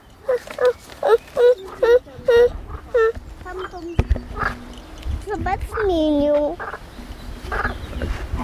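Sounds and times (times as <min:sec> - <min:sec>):
outdoor noise: 0:00.0 - 0:08.4
frog croaking with inflating vocal sacs: 0:00.2 - 0:04.8, 0:06.6 - 0:07.8.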